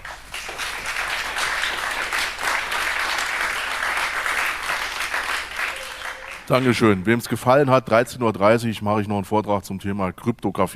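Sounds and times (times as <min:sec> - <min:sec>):
audience applauding a speaker after a question session: 0:00.0 - 0:07.1
speech: 0:06.5 - 0:10.7.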